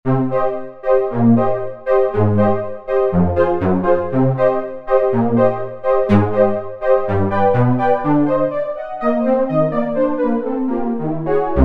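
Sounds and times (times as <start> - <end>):
marcato synth on a Roland V-Synth factory patch: 0.1 - 11.6.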